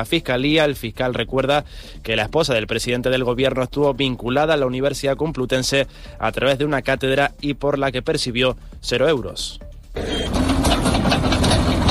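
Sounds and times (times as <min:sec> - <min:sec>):
speech: 0:00.0 - 0:10.4
military emergency unit tractors cutting firebreaks against a wildfire: 0:10.0 - 0:11.8.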